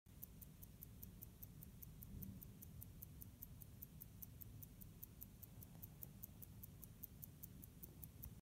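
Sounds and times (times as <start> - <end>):
pocket watch: 0.1 - 8.4.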